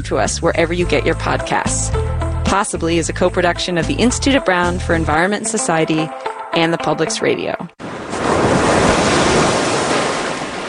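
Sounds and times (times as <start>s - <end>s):
speech: 0.0s - 7.8s
ocean surf rolling and washing onto the shore: 7.8s - 10.6s.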